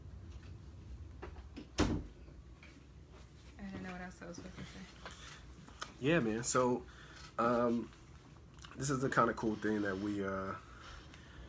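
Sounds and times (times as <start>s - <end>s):
door swinging shut with a solid thud: 1.7s - 2.1s
speech: 4.0s - 5.4s, 6.0s - 8.0s, 8.8s - 10.7s.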